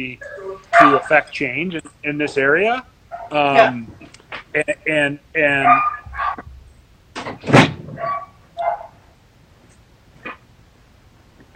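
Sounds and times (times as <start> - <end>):
speech: 0.0 - 6.0
dogs barking excitedly: 0.2 - 3.9, 5.4 - 6.5, 7.6 - 9.2.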